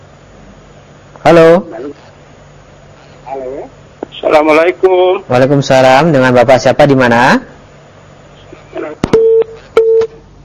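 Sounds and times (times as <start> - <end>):
speech: 1.2 - 2.0, 4.3 - 7.5
phone busy tone after a disconnected call: 9.1 - 10.2.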